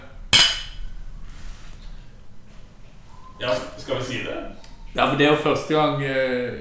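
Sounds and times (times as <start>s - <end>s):
glasses clinking in a toast: 0.4s - 5.4s
speech: 3.4s - 6.5s.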